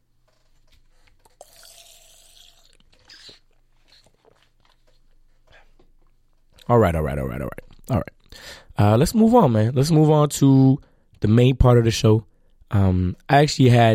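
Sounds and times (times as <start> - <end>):
person sipping and swallowing water: 1.1 - 4.6
speech: 6.7 - 8.1, 8.8 - 13.9.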